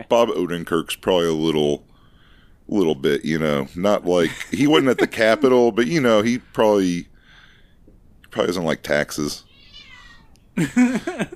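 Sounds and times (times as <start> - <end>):
speech: 0.0 - 1.9, 2.7 - 7.1, 8.3 - 9.5, 10.6 - 11.3
laughter: 4.1 - 6.4, 10.6 - 11.3
cat meowing: 9.4 - 10.4.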